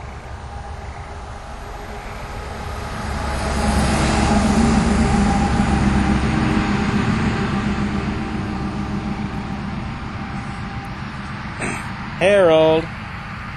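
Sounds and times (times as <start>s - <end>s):
road traffic passing: 0.0s - 13.5s.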